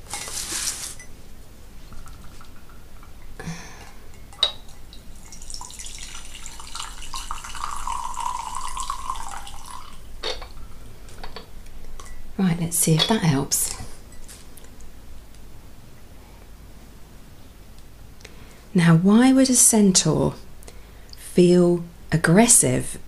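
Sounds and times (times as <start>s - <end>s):
green tea being stirred: 1.8s - 3.3s, 4.1s - 10.5s
green tea being poured: 4.2s - 10.6s
speech: 12.4s - 13.7s, 18.8s - 20.4s, 21.4s - 23.0s.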